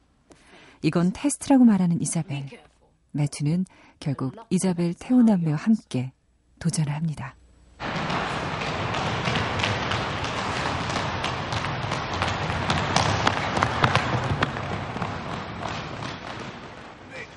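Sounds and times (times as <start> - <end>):
speech: 0.8 - 7.4
footsteps of several people running across a hard floor in an echoing hall: 7.8 - 17.3.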